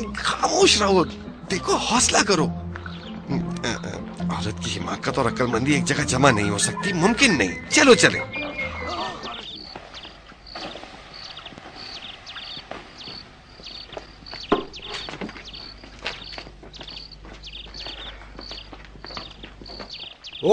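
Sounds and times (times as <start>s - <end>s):
speech: 0.0s - 2.6s, 3.3s - 8.4s
horse hooves clip-clopping at a walking pace: 9.6s - 20.4s.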